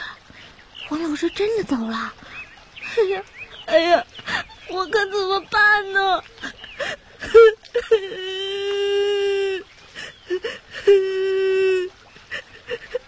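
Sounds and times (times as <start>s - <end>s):
speech: 0.9s - 2.2s, 2.9s - 6.6s, 7.3s - 8.4s, 10.4s - 11.4s
child crying: 7.2s - 9.6s, 10.3s - 11.9s.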